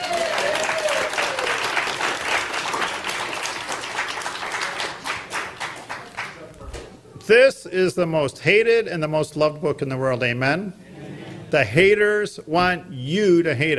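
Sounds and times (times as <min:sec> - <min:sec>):
crowd applause: 0:00.0 - 0:06.5
speech: 0:07.3 - 0:10.8, 0:11.5 - 0:13.7.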